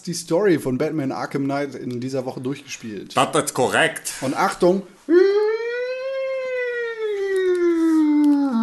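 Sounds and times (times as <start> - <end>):
speech: 0.0 - 5.3
siren alarm wail: 5.1 - 8.6.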